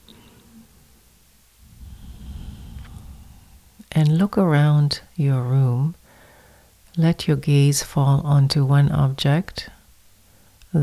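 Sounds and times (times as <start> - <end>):
slow deep breath drawn in: 1.6 - 3.8, 6.0 - 6.8
speech: 4.0 - 6.0, 7.0 - 9.8.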